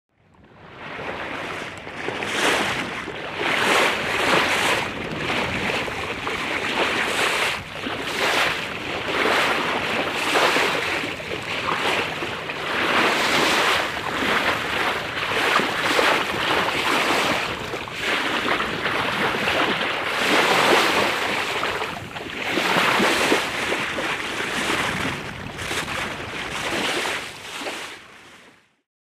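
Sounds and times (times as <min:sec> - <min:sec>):
sea waves: 0:00.4 - 0:28.6.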